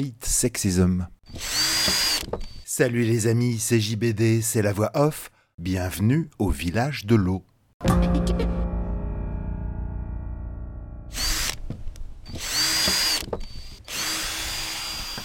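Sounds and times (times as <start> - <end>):
speech: 0.0 - 8.4
power drill whirring in a workshop: 1.2 - 2.7, 11.1 - 11.6, 12.2 - 15.2
low ringing hum: 8.6 - 11.6.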